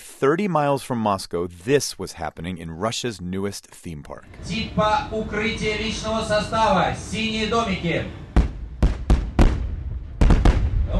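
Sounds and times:
speech: 0:00.2 - 0:08.2
artillery fire at a military theme park outside Moscow: 0:08.4 - 0:10.9.

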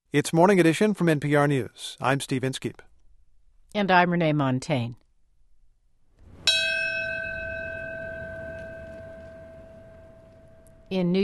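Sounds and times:
speech: 0:00.1 - 0:02.9, 0:03.7 - 0:05.0, 0:10.9 - 0:11.2
quiet ambience: 0:00.2 - 0:11.2
single memorial bell struck: 0:06.3 - 0:10.9.

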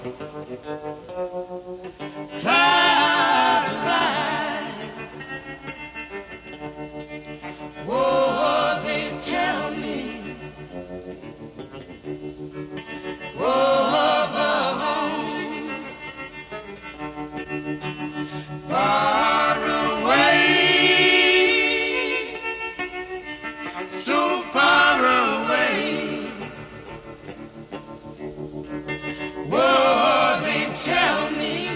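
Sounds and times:
gospel electric guitar drenched in wavering eerie reverb: 0:00.0 - 0:31.7
sustained family gospel vocal harmonies: 0:01.8 - 0:11.8, 0:12.7 - 0:27.8, 0:28.8 - 0:31.7.

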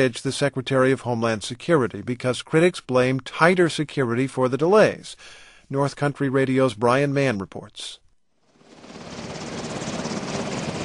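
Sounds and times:
speech: 0:00.0 - 0:08.0
Black Hawk helicopter flying along the U.S.-Canada border: 0:08.5 - 0:10.8.

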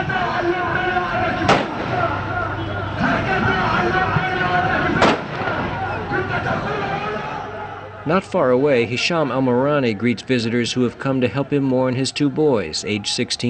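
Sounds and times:
outdoor crowd of mourners murmuring and shouting calls for revenge: 0:00.0 - 0:13.4
gunshots from mourners firing guns in the streets of Gaza City: 0:01.4 - 0:02.2, 0:04.9 - 0:06.0
speech: 0:08.0 - 0:13.4.

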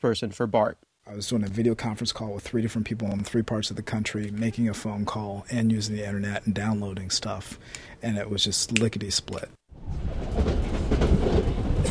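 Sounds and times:
speech: 0:00.0 - 0:09.6
commuter train rolling along its rails with a steady rumble: 0:09.8 - 0:11.8.

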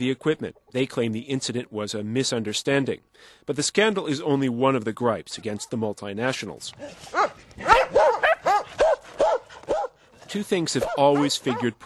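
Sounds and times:
speech: 0:00.0 - 0:07.7, 0:10.3 - 0:11.8
sled dogs barking: 0:06.8 - 0:10.0, 0:10.7 - 0:11.8.

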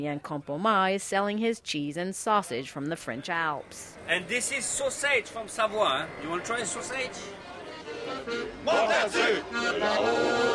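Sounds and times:
speech: 0:00.0 - 0:07.5, 0:08.2 - 0:10.5
large crowd singing nostalgic songs outdoors at a wine festival in Montmartre Paris: 0:08.0 - 0:10.5.

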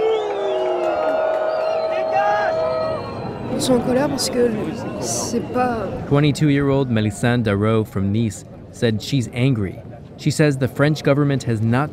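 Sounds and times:
large crowd booing and shouting: 0:00.0 - 0:06.1
speech: 0:03.6 - 0:11.9.

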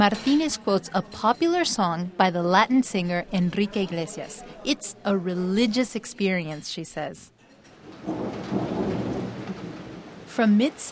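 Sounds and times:
speech: 0:00.0 - 0:07.4, 0:08.0 - 0:08.8, 0:10.4 - 0:10.9
low thunder rumbling: 0:07.8 - 0:10.5
rain showers over maturing cornfields in Mexico in midsummer: 0:07.8 - 0:10.9.

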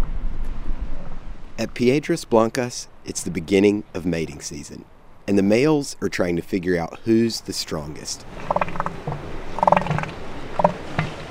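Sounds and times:
speech: 0:01.6 - 0:08.9
sexually mature male northern elephant seal growling at start of mating season, California coast: 0:08.3 - 0:11.2.

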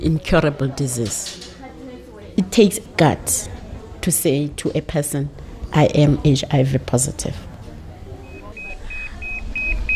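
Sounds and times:
speech: 0:00.0 - 0:01.5, 0:02.4 - 0:07.5
hospital pager bleeping: 0:08.2 - 0:09.9.

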